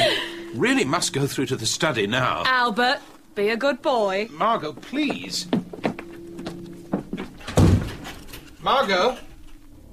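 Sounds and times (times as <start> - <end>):
speech: 0.6 - 5.6, 8.6 - 9.3
door pushed shut with a heavy thud: 7.4 - 8.1.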